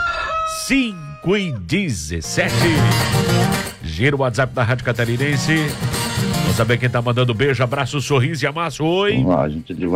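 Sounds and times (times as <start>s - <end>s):
rooster crowing: 0.0s - 1.6s
speech: 0.7s - 6.0s, 6.6s - 9.9s.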